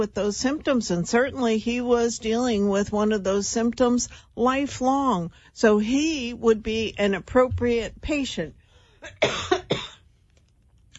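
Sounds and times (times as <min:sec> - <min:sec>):
speech: 0:00.0 - 0:09.6
harsh coughs: 0:09.0 - 0:10.1.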